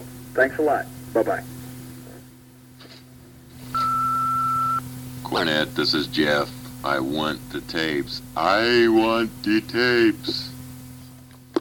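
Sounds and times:
low constant hum: 0:00.0 - 0:11.5
speech: 0:00.4 - 0:01.5, 0:05.3 - 0:10.5
telephone answering machine electronic beep: 0:03.7 - 0:04.8.

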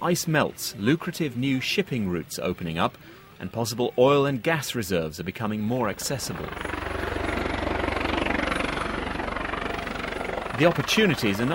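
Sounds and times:
speech: 0:00.0 - 0:06.8, 0:10.6 - 0:11.5
helicopter rotor blades thumping: 0:05.9 - 0:11.5.

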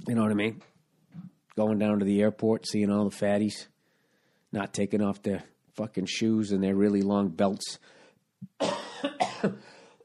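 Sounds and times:
speech: 0:00.1 - 0:03.7, 0:04.5 - 0:08.0, 0:08.6 - 0:09.8
person with an irritated throat coughing harshly: 0:08.6 - 0:09.9.

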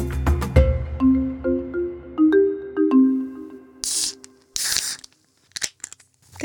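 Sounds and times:
bright plinking melodic tones: 0:01.0 - 0:03.8
foam spraying from a freshly opened bottle of pilsner beer: 0:03.8 - 0:05.2.

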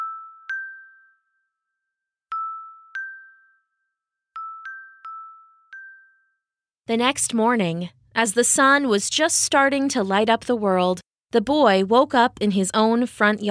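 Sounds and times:
delicate silver bells tinkling: 0:00.0 - 0:01.7, 0:02.3 - 0:06.5
speech: 0:06.9 - 0:13.4.

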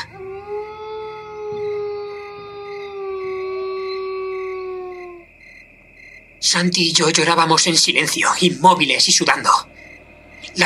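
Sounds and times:
wolf howl: 0:00.0 - 0:05.3
faint low rumble: 0:00.0 - 0:10.6
speech: 0:06.4 - 0:09.8, 0:10.5 - 0:10.6.

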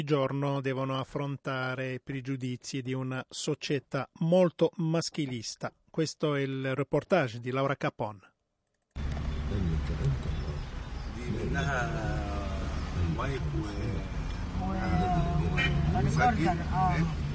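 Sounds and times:
speech: 0:00.0 - 0:08.3, 0:11.4 - 0:12.2, 0:13.2 - 0:15.1, 0:15.9 - 0:17.3
heavy city traffic rumble with passing engines in Cairo Egypt: 0:09.0 - 0:17.3.

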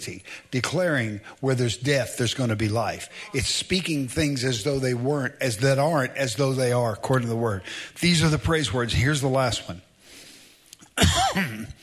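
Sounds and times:
speech: 0:00.0 - 0:09.9, 0:11.0 - 0:11.8
harsh cough: 0:11.0 - 0:11.8.

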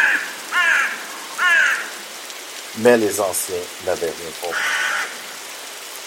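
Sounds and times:
crow cawing: 0:00.0 - 0:02.0, 0:04.5 - 0:05.5
speech: 0:02.8 - 0:04.8.

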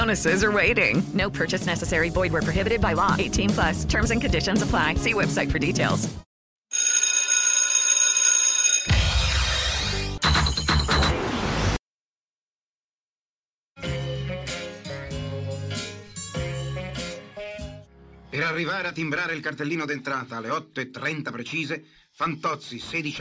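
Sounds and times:
speech: 0:00.0 - 0:06.2, 0:18.5 - 0:23.2
music: 0:00.0 - 0:06.3, 0:09.0 - 0:11.1, 0:13.8 - 0:19.6
alarm clock bell ringing: 0:06.7 - 0:09.3.

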